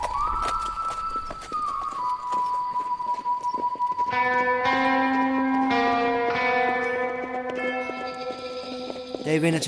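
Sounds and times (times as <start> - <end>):
horse hooves clip-clopping at a steady pace: 0.0 - 9.6
bright bell-like chimes: 5.7 - 9.6
speech: 9.3 - 9.6.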